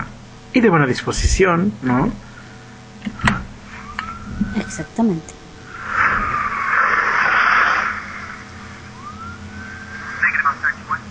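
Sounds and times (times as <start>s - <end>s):
speech: 0.5s - 2.3s, 3.0s - 3.5s, 4.4s - 5.4s
police siren wailing: 3.6s - 11.1s.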